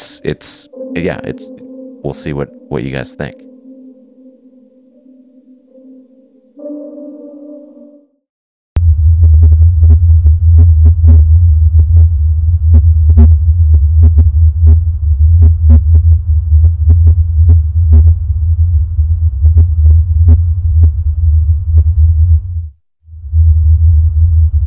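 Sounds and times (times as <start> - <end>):
speech: 0.2 - 3.5
loud steady low-frequency droning hum with throbbing pulses: 8.8 - 24.6.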